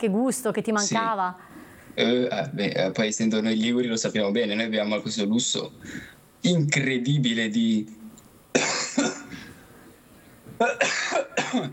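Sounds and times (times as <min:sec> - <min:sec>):
speech: 0:00.0 - 0:08.0, 0:10.6 - 0:11.7
harsh coughing fit: 0:08.5 - 0:09.5, 0:10.6 - 0:11.7.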